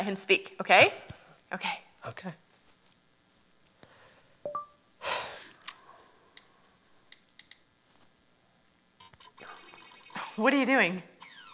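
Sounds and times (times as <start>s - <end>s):
speech: 0.0s - 2.4s, 10.4s - 11.1s
soft rustle: 2.4s - 4.0s, 7.8s - 8.3s
electronic phone keypad beeps: 4.5s - 4.8s.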